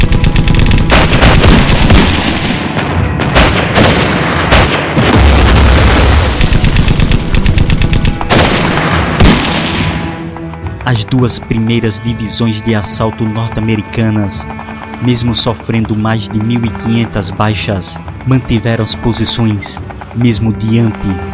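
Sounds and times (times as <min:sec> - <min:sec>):
coastal artillery deep booms: 0:00.0 - 0:10.2
intense rifle fire in a wartime battle: 0:00.0 - 0:10.3
speech: 0:10.9 - 0:21.3.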